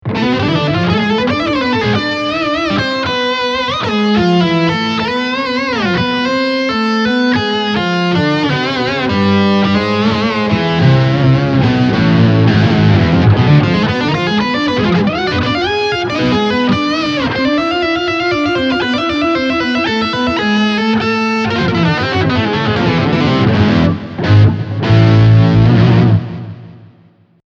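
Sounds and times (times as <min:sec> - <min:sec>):
distortion and octaver effect sound: 0:00.0 - 0:26.9.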